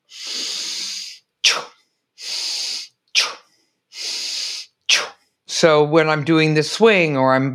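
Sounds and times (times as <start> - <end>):
loud forceful inhales through the nose with snorting bursts of air: 0.0 - 5.2
speech: 5.6 - 7.5.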